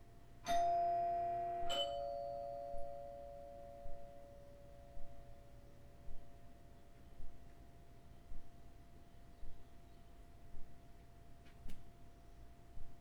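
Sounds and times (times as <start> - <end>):
doorbell: 0.5 - 5.4.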